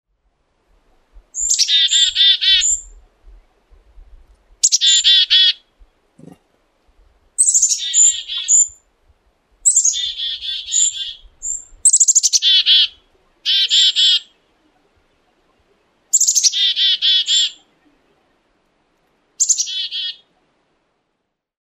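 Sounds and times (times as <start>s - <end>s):
black-capped chickadee calling: 1.3s - 3.0s, 4.6s - 6.4s, 7.4s - 8.8s, 9.6s - 14.5s, 16.1s - 17.9s, 19.4s - 20.3s.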